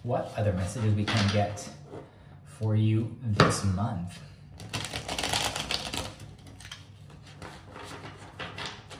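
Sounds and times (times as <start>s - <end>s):
speech: 0.0s - 1.8s, 2.6s - 4.3s
tarot cards being shuffled: 4.6s - 8.9s.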